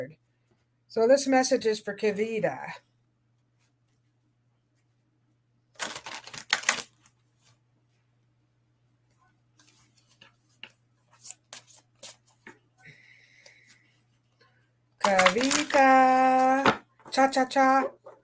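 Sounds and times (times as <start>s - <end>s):
speech: 0.0s - 0.2s, 0.9s - 2.9s, 15.1s - 18.0s
oracle cards being shuffled: 5.8s - 7.1s, 15.0s - 15.9s.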